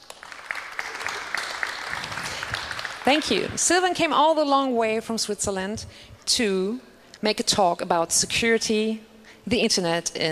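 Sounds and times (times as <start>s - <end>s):
audience applause greeting a guest introduced at a talk: 0.0s - 3.6s
speech: 3.0s - 10.3s.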